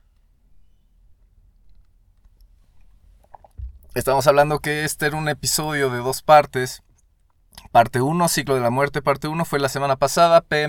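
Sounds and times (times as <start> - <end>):
soft mouth and swallowing clicks: 1.6 - 4.0, 6.9 - 7.7
cup knocking: 3.3 - 4.0
speech: 4.0 - 6.9, 7.6 - 10.6.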